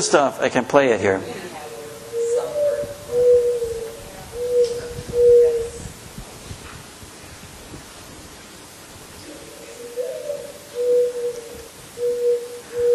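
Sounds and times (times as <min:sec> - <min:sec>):
speech: 0:00.0 - 0:01.4
hiss: 0:00.0 - 0:12.9
mourning dove cooing: 0:01.2 - 0:06.0, 0:09.2 - 0:12.9.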